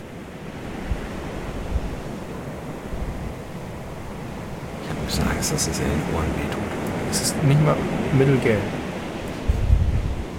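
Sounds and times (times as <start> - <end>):
sea waves washing over pebbles on a Dominican Republic beach: 0.1 - 9.5
speech: 5.1 - 8.8.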